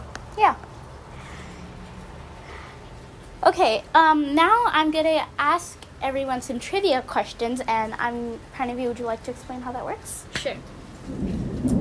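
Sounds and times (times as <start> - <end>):
steady rain: 0.0 - 11.7
speech: 0.4 - 0.7, 3.4 - 11.4
low rolling thunder: 10.8 - 11.7.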